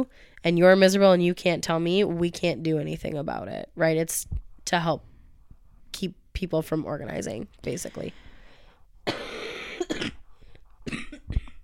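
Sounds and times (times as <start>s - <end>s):
speech: 0.0s - 5.1s, 5.9s - 8.2s
person coughing: 9.1s - 10.2s, 10.8s - 11.6s.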